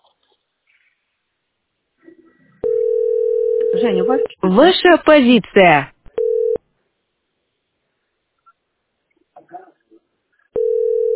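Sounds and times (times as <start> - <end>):
loud steady telephone line tone: 2.6 - 4.3, 6.2 - 6.6, 10.6 - 11.1
speech: 3.8 - 5.9.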